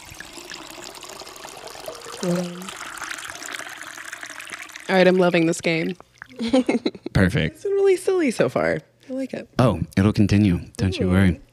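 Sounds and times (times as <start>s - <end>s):
drink pouring into a glass with a gurgling trickle: 0.0s - 6.5s
speech: 2.2s - 2.8s, 4.9s - 11.4s.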